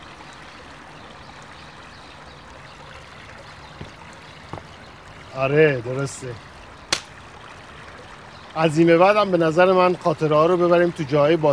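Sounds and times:
water sloshing and lapping around a boat: 0.0s - 8.7s
speech: 5.4s - 6.5s, 8.6s - 11.5s.

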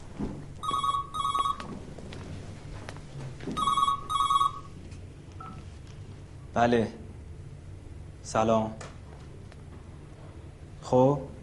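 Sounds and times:
low noise: 0.0s - 11.4s
telephone ringing in trilling electronic bursts: 0.6s - 2.1s, 3.1s - 4.8s
speech: 6.6s - 7.0s, 8.3s - 8.9s, 10.9s - 11.3s.

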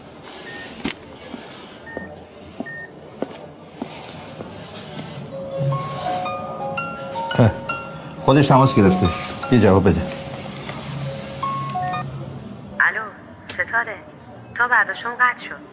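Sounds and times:
faint noise: 0.0s - 15.7s
speech: 7.4s - 7.6s, 8.3s - 10.2s
electronic phone key beeps while dialing a phone number: 11.4s - 12.0s.

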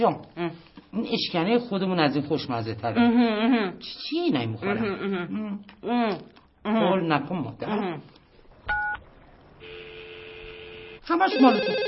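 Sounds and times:
speech: 0.0s - 8.2s, 11.1s - 11.8s
continuous electronic telephone ringing tone: 9.6s - 11.8s.

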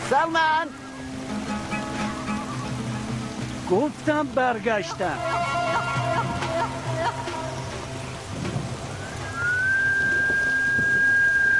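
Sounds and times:
rain-like rushing noise: 0.0s - 11.5s
speech: 0.1s - 1.1s, 3.7s - 5.9s
person whistling one long high note: 9.2s - 11.5s.

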